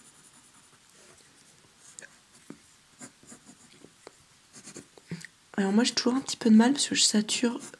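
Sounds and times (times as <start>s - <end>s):
pencil sketching on paper: 0.0s - 1.2s, 4.6s - 4.9s, 7.5s - 7.7s
speech: 5.6s - 7.7s.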